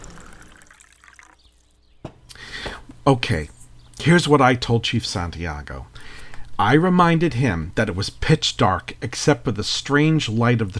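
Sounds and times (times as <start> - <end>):
apple cider pouring into a glass: 0.0 - 1.9
speech: 3.1 - 5.9, 6.6 - 10.7.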